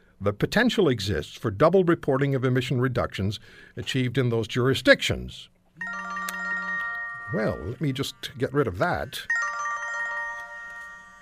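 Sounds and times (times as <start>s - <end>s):
speech: 0.2s - 5.9s, 7.3s - 9.4s
mobile phone ringtone playing a melodic electronic tune: 5.8s - 11.2s.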